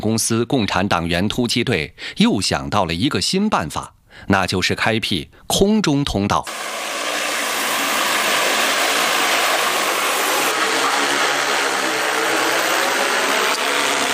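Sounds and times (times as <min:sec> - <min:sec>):
speech: 0:00.0 - 0:07.1
heavy-lift drone rotors spinning and roaring at a mountaintop power-line construction site: 0:06.5 - 0:14.1.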